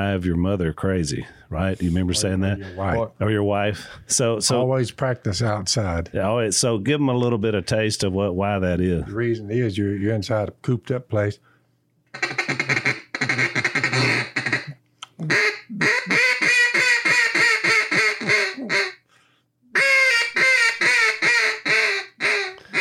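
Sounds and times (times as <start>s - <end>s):
speech: 0.0s - 11.5s, 12.2s - 12.5s
duck call imitating mallard hen quacks: 12.1s - 19.1s, 19.7s - 22.8s.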